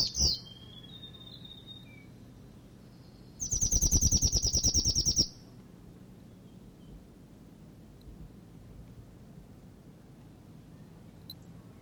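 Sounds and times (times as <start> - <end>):
male whitehead territorial call: 0.0 - 2.2, 2.9 - 5.4.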